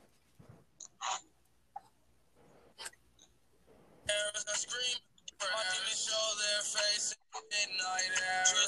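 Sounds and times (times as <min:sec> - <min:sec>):
tinny rap music through a small phone speaker: 0:04.0 - 0:08.6.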